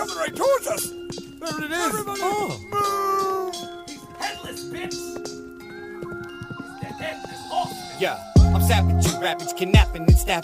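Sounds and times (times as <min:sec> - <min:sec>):
horse hooves clopping: 0:00.0 - 0:10.4
speech: 0:00.2 - 0:02.7, 0:08.0 - 0:10.4.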